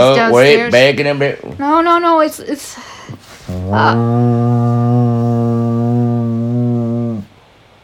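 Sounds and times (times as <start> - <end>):
speech: 0.0 - 6.0
person's voice imitating a foghorn blast: 3.5 - 7.3.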